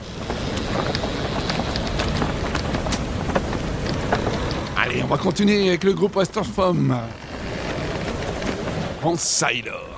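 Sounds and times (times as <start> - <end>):
creaking: 0.0 - 9.4
big storm waves with deep troughs roaring: 0.0 - 9.9
rushing storm wind: 0.0 - 9.9
speech: 5.0 - 7.2, 9.0 - 9.9.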